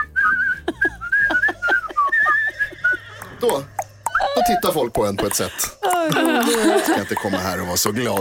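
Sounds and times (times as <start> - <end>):
person whistling a Christmas tune: 0.0 - 2.6
laughter: 0.6 - 8.1
speech: 3.4 - 3.7, 4.5 - 8.1.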